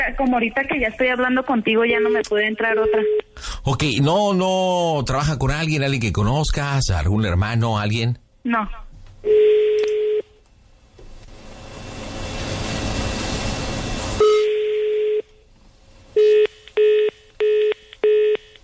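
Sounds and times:
speech: 0.0s - 9.4s
steady telephone tone as a call is diverted: 9.2s - 10.4s, 14.2s - 15.4s, 16.2s - 18.6s
telephone line hiss: 11.3s - 14.2s.

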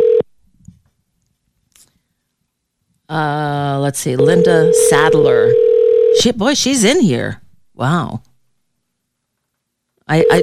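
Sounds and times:
telephone ringing tone: 0.0s - 0.2s, 4.2s - 6.2s, 10.1s - 10.4s
speech: 3.1s - 5.6s, 6.2s - 8.3s, 10.1s - 10.4s.

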